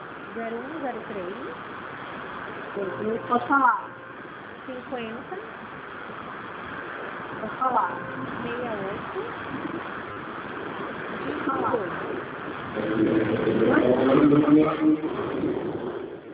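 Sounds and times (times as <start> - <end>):
speech: 0.4 - 1.8, 2.8 - 4.0, 4.7 - 6.2, 7.4 - 9.9, 10.8 - 15.9
car passing by: 12.7 - 16.3.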